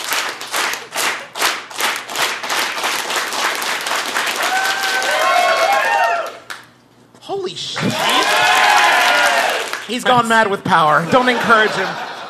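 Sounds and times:
audience slow clapping into applause: 0.0s - 6.8s, 7.8s - 10.5s
laughter: 7.7s - 8.6s, 10.9s - 12.2s
speech: 9.9s - 12.0s.

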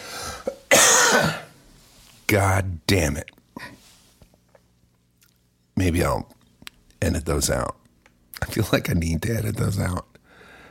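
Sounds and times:
person coughing harshly: 0.4s - 1.6s
speech: 2.3s - 3.8s, 5.8s - 6.4s, 7.0s - 7.8s, 8.4s - 10.1s.

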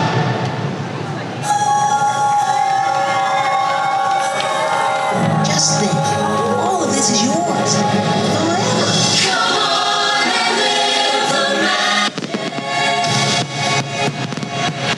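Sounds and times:
dense crowd talking and cheering at a mall: 0.0s - 14.9s
children shouting: 1.5s - 6.7s
deep firework booms heard from a mall: 12.0s - 14.9s.

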